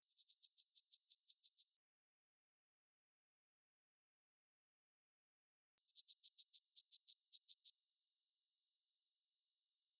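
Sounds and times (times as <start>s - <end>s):
wedge-breasted shieldback Aglaothorax sphenosternum calling song in Baja California, Mexico: 0.1s - 1.7s, 5.9s - 7.8s.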